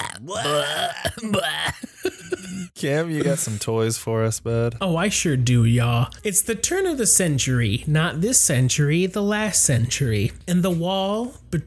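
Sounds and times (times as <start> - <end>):
several people burping together: 0.0 - 3.6
speech: 0.2 - 2.2, 2.8 - 11.6.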